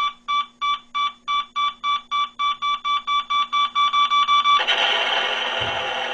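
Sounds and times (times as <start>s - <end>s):
novelty dynamite alarm clock electronic beeps: 0.0s - 4.7s
novelty dynamite alarm clock hissing explosion noise with low rumble: 4.6s - 6.1s.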